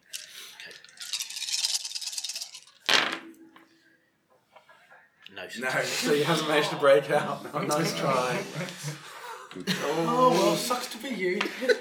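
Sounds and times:
tabletop role-playing game dice rattling in a hand: 0.0s - 3.1s
speech: 5.4s - 11.7s
laughter: 5.7s - 11.7s.

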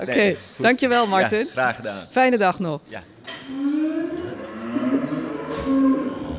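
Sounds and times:
speech: 0.0s - 4.1s
cows mooing waiting to be fed: 3.4s - 6.3s.

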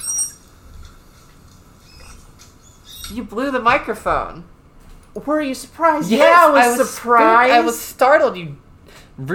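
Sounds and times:
manatee squeak recorded underwater by hydrophone: 0.0s - 0.5s, 1.8s - 3.2s
speech: 3.1s - 4.6s, 5.2s - 8.6s, 9.2s - 9.3s.

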